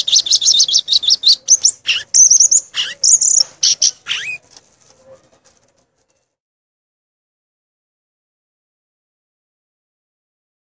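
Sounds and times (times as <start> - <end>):
Violaceous euphonia song with twittering and buzzy notes: 0.0 - 4.4.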